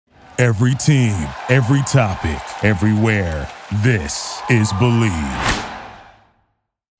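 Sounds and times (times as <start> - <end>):
speech: 0.4 - 5.7
whoosh: 5.4 - 6.3.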